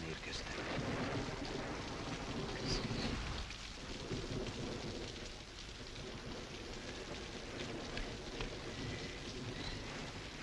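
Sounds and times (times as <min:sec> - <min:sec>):
heavy rain pouring in a forest: 0:00.0 - 0:10.4
thunder rumbling in a forest: 0:00.0 - 0:10.4.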